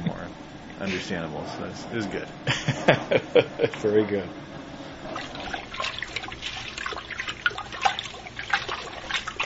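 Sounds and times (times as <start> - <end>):
speech: 0.8 - 4.5
laughter: 2.5 - 3.8
cooled beer wort stirred into a whirlpool in a large brew kettle: 4.7 - 9.4.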